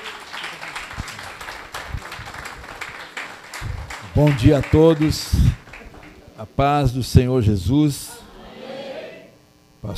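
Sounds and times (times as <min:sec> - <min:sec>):
sharp individual claps: 0:00.0 - 0:06.2
audience applause at a church service: 0:00.0 - 0:06.4
speech: 0:04.2 - 0:05.5, 0:06.4 - 0:08.1.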